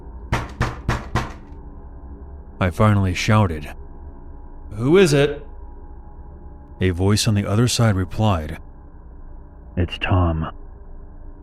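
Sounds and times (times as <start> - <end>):
firm hollow knocks on an apartment door: 0.3 - 1.5
speech: 2.6 - 3.8, 4.7 - 5.5, 6.8 - 8.6, 9.8 - 10.6.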